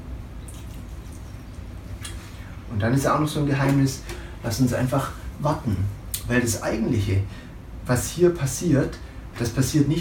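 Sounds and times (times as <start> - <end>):
water pouring while watering a plant: 0.4 - 1.6
speech: 2.7 - 9.9.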